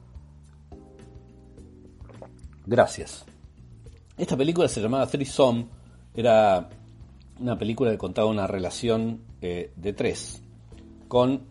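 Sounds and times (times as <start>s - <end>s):
person sipping water from a glass: 1.6s - 2.7s, 3.8s - 4.2s
person swallowing water: 1.9s - 2.7s
speech: 2.7s - 3.3s, 4.2s - 6.8s, 7.4s - 10.4s, 11.1s - 11.5s.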